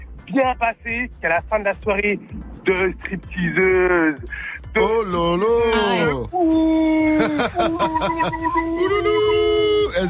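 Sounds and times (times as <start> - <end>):
speech: 0.3 - 10.0
person imitating a wolf howl: 6.4 - 10.0
laughter: 6.9 - 10.0.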